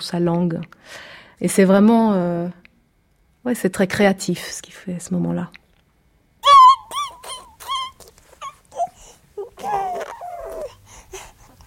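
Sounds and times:
speech: 0.0 - 2.6, 3.4 - 5.6
baby crying: 6.4 - 10.8.

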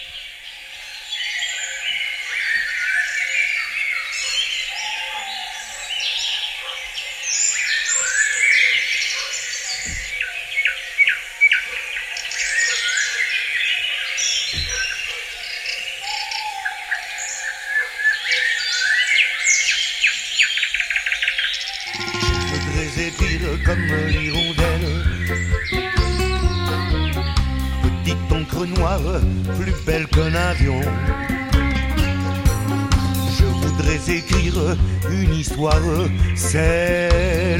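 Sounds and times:
many birds chirping and trilling in an echoing forest: 0.0 - 37.5
loud music: 21.9 - 37.5.

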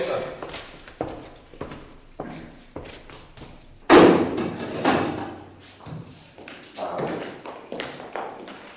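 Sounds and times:
footsteps: 0.0 - 8.7
laboratory door banging open: 3.8 - 5.5.

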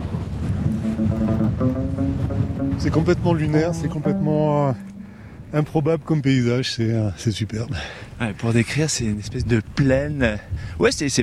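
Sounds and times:
strong wind rushing across a high mountain ridge at altitude: 0.0 - 5.6
speech: 2.7 - 11.2.

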